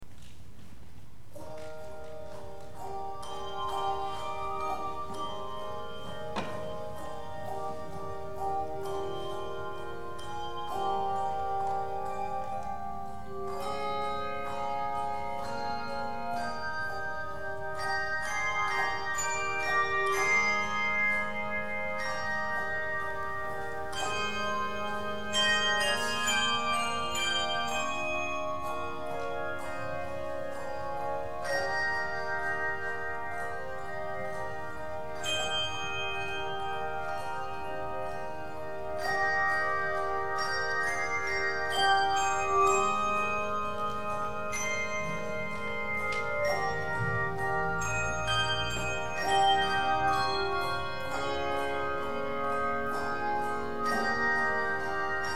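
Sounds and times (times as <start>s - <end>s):
handbells ringing: 1.3s - 55.3s.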